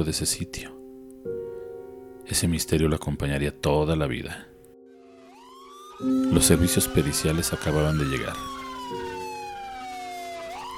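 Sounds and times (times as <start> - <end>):
speech: 0.0 - 0.8, 2.3 - 4.5, 6.0 - 9.1
police siren wailing: 4.9 - 10.7.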